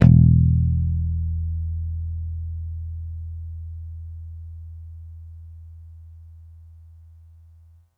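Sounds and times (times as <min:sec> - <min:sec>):
electric bass picked long E note one shot: 0:00.0 - 0:07.7.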